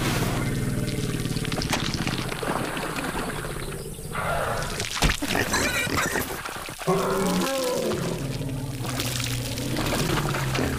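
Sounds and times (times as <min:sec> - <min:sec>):
warthogs wallowing in a cooling mud bath: 0:00.0 - 0:10.7.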